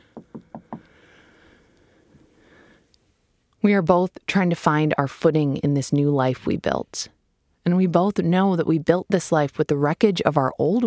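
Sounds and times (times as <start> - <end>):
knocking on wood: 0.1 - 0.9
speech: 3.6 - 10.8.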